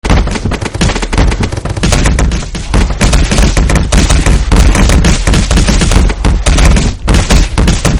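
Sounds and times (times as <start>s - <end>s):
ragdoll impacts: 0.0s - 7.9s.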